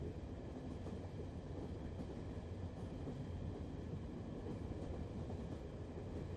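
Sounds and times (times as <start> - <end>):
train rumbling: 0.0 - 6.3.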